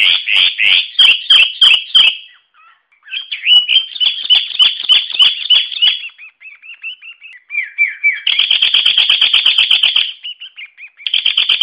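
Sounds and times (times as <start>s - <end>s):
sooty-headed bulbul song: 0.0s - 11.6s.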